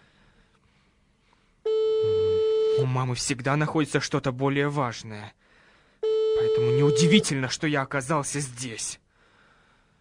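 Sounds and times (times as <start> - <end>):
telephone ringback tone while waiting for an answer: 1.7 - 2.8, 6.0 - 7.3
speech: 2.8 - 5.5, 6.4 - 9.0.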